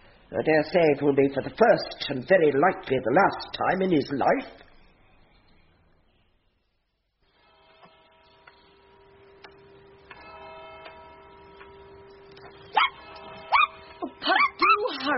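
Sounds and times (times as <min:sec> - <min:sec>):
steady mechanical hum: 0:00.0 - 0:15.1
speech: 0:00.3 - 0:04.6
dog giving a sharp bark: 0:12.8 - 0:13.8.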